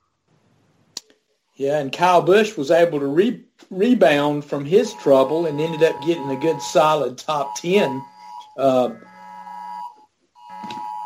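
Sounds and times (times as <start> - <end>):
speech: 1.6 - 9.1
phone emergency alert tone: 4.7 - 11.0.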